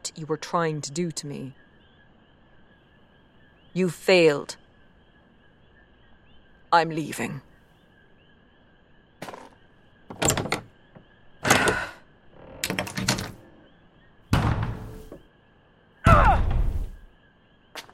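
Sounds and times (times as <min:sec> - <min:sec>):
speech: 0:00.2 - 0:01.6, 0:03.7 - 0:04.6, 0:06.7 - 0:07.5
sticking door being pushed open, thumping and scraping: 0:09.2 - 0:13.7, 0:14.3 - 0:15.3, 0:16.1 - 0:17.1.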